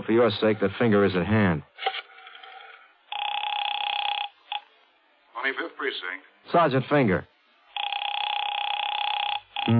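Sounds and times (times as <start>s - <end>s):
speech: 0.1s - 2.0s, 5.5s - 7.3s
telephone ringing over the line: 3.1s - 4.6s, 7.7s - 9.7s.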